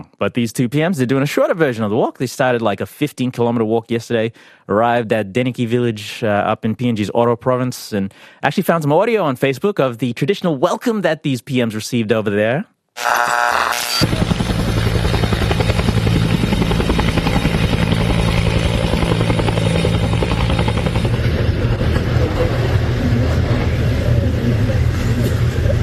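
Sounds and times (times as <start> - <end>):
speech: 0.2 - 14.4
helicopter rotor chop arriving at a village in Papua New Guinea's Oro province: 14.0 - 25.8.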